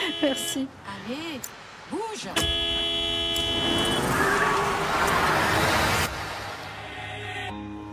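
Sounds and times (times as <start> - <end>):
car horn honking: 0.0 - 0.7, 2.4 - 4.2
busy traffic noise and road rumble: 0.0 - 7.5
speech: 0.2 - 2.9.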